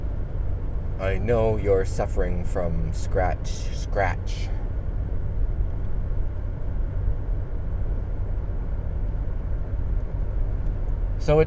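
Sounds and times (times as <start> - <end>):
old little green pickup truck cabin road and engine rumble while driving: 0.0 - 11.4
speech: 1.0 - 4.6, 11.2 - 11.4.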